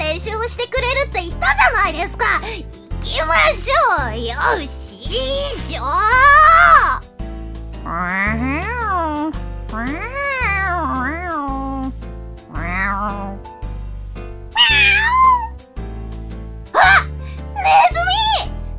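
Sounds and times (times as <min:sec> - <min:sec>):
light music: 0:00.0 - 0:18.7
speech: 0:00.5 - 0:07.0, 0:07.8 - 0:08.6
two cats meowing while playing: 0:14.5 - 0:15.6.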